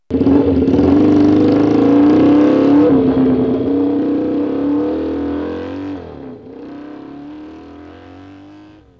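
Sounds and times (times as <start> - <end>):
motorcycle: 0.0 - 8.9.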